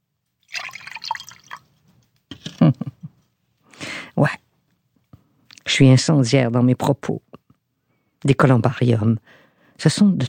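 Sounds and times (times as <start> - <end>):
drink being poured: 0.4 - 1.7
speech: 5.8 - 7.3, 8.2 - 10.2.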